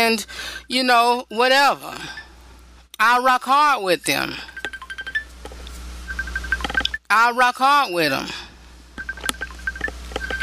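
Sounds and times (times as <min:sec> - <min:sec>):
speech: 0:00.0 - 0:02.2, 0:03.0 - 0:04.5, 0:07.1 - 0:08.4
mobile phone ringing with repeated electronic beeping tone: 0:04.4 - 0:05.4, 0:06.0 - 0:07.0, 0:09.0 - 0:10.4.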